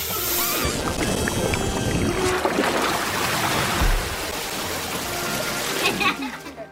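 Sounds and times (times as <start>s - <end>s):
rude sputtering noises: 0.2s - 2.5s
boiling water splashing and churning: 0.4s - 6.7s.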